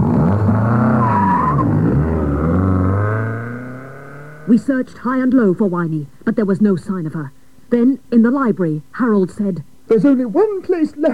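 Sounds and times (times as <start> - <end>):
car engine revving and pulling away: 0.0 - 4.9
brief car tyre squeal: 0.5 - 2.2
speech: 4.5 - 11.1.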